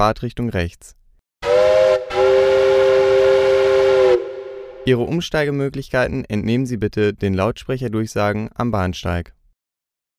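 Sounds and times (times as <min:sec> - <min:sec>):
speech: 0:00.0 - 0:01.0, 0:04.8 - 0:09.4
train whistle blasts: 0:01.4 - 0:04.9.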